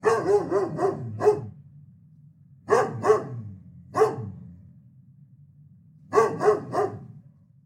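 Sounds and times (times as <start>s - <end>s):
large dog barking in a backyard: 0.0s - 1.7s, 2.6s - 4.6s, 6.1s - 7.3s.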